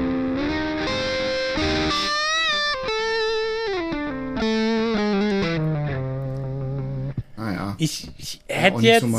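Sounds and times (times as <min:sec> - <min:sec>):
distorted electric guitar playing a melodic line: 0:00.0 - 0:07.3
speech: 0:07.8 - 0:09.1.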